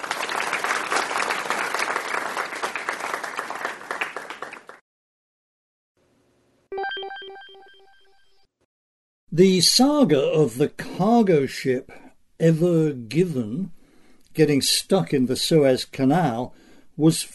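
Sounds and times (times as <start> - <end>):
crowd applauding: 0.0 - 4.8
bright electronic ringtone-like chime: 6.7 - 8.4
speech: 9.3 - 13.8, 14.4 - 17.3.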